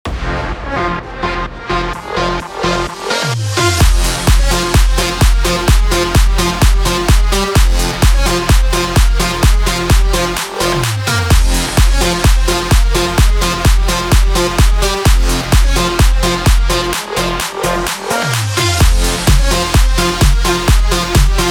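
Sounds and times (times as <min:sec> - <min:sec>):
electro house music bed in F minor at 128 BPM: 0:00.1 - 0:21.5.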